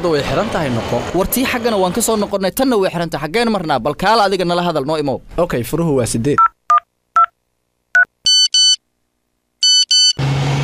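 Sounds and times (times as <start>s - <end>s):
speech: 0.0s - 6.5s
mobile phone high electronic beeps: 6.4s - 7.3s, 8.0s - 8.8s, 9.6s - 10.2s
mobile phone ringing: 8.0s - 8.8s, 9.6s - 10.2s.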